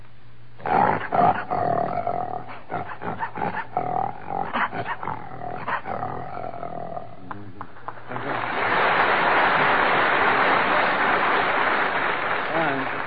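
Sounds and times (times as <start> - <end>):
man's voice imitating a lion's roar: 0.6 - 7.6
audience applause: 8.0 - 13.0.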